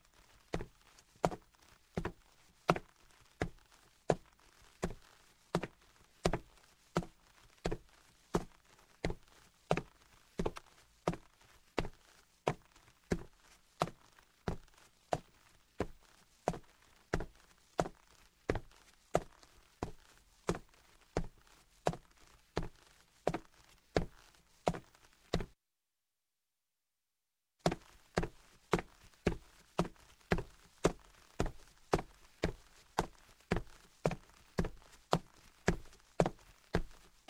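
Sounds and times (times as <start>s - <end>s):
sneaker footsteps on hardwood: 0.6s - 25.6s, 27.6s - 37.2s.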